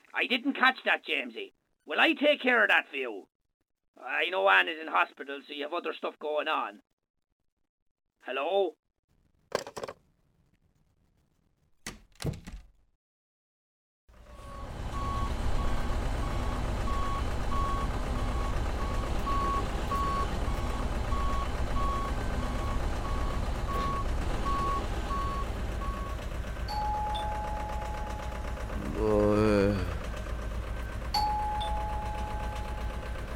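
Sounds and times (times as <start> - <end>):
speech: 0.2 - 3.3, 4.0 - 6.9, 8.2 - 8.8
sharp metallic clunks: 9.5 - 10.0
truck engine rumbling: 14.2 - 33.3
truck reversing alarm beeping: 14.3 - 28.5, 30.8 - 33.0.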